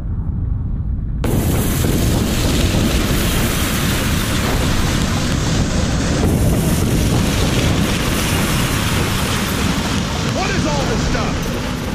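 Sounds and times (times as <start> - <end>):
deep low rumble: 0.0 - 11.9
massive explosive roar of simulated volcanic eruption: 0.0 - 11.9.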